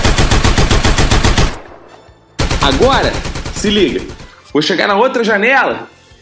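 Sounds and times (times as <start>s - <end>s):
automatic gunfire bursts outside a house: 0.0s - 1.8s, 2.4s - 4.4s
sharp gunshot: 0.0s - 4.0s
speech: 2.6s - 5.9s.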